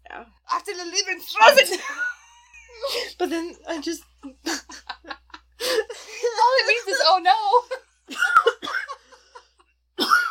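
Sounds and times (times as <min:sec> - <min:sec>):
speech: 0:00.2 - 0:02.2, 0:02.8 - 0:04.6, 0:07.1 - 0:07.8
harsh raspy coughing fit: 0:08.1 - 0:09.3, 0:10.0 - 0:10.2.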